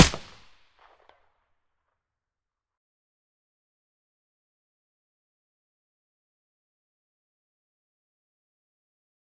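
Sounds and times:
APS silenced gunshot: 0:00.0 - 0:00.4.

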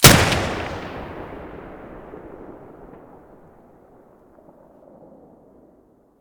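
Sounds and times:
Benelli shotgun muzzle gunshot: 0:00.0 - 0:03.5.

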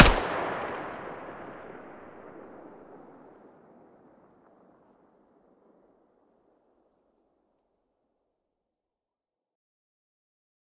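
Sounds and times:
weapon muzzle blast: 0:00.0 - 0:01.2.

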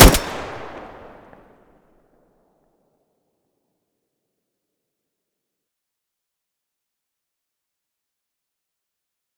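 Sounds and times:
Groza rifle muzzle gunshot: 0:00.0 - 0:01.3.

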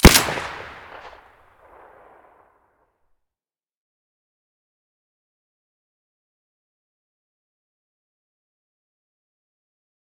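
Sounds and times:
Saiga rifle shots with silencer: 0:00.0 - 0:02.2.

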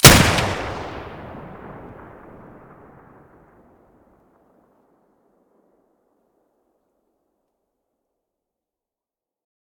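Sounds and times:
Benelli gun muzzle blasts: 0:00.0 - 0:02.8.

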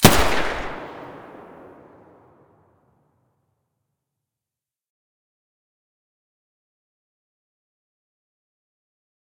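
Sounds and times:
UMP45 submachine gun muzzle blast: 0:00.0 - 0:02.2.

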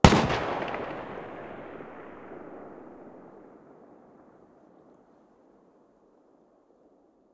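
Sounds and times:
Galil rifle muzzle blast far: 0:00.0 - 0:04.4.

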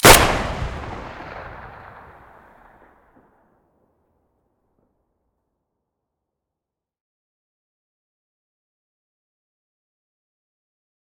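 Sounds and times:
Saiga gun muzzle blast: 0:00.0 - 0:02.4.

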